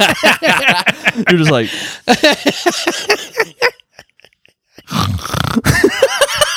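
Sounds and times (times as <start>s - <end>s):
speech: 0.0s - 3.7s
laughter: 0.0s - 4.9s, 5.6s - 6.5s
person imitating snoring with their voice: 4.9s - 5.7s.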